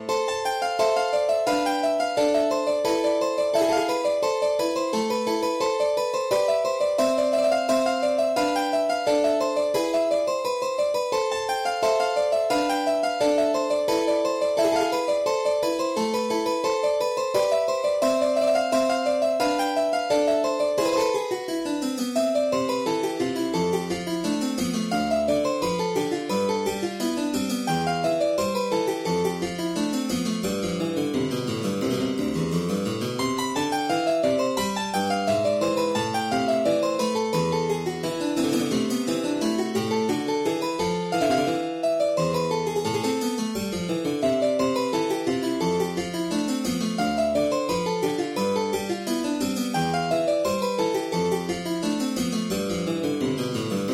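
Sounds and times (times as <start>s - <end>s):
German harpsichord: 0.0s - 53.9s.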